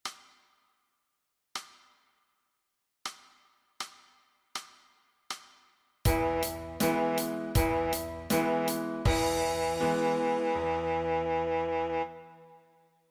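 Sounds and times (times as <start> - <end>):
saxophone playing D flat: 6.1 - 12.8.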